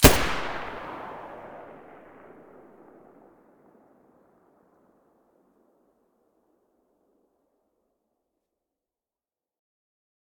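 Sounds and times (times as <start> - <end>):
machine gun muzzle blast: 0.0 - 1.4.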